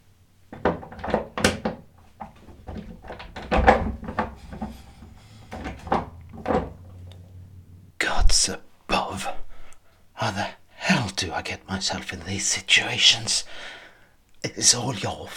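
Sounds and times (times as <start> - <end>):
door being shut with wooden thumps and knocks: 0.5 - 7.6
low hum: 1.8 - 8.4
speech: 8.4 - 9.4, 11.2 - 13.8, 14.4 - 15.3.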